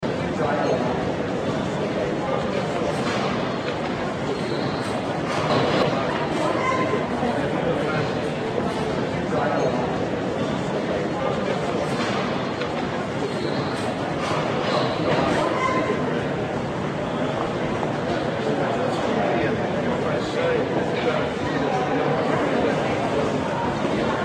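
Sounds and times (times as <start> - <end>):
large crowd in an airport: 0.0 - 24.2.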